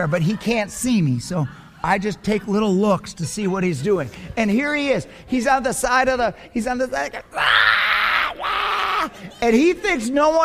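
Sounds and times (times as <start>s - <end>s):
speech: 0.0s - 7.8s, 9.2s - 10.4s
person imitating a screaming toddler in a playpen: 7.3s - 9.1s.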